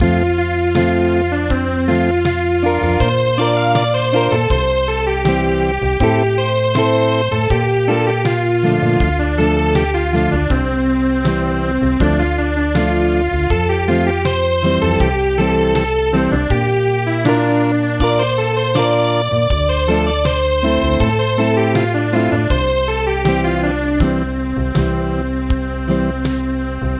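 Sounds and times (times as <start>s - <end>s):
traditional acoustic midi music: 0.0s - 26.9s.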